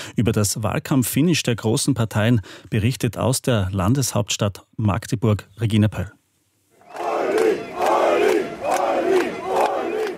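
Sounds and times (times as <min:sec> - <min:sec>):
speech: 0:00.2 - 0:06.2
crowd of fans chanting in unison at an election campaign rally in Germany: 0:06.8 - 0:10.1.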